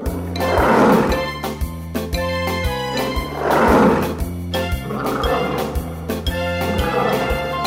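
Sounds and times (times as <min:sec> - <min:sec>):
lion roaring: 0:00.0 - 0:01.4, 0:02.9 - 0:07.6
upbeat musical backing with a bouncing bass line: 0:00.0 - 0:07.6.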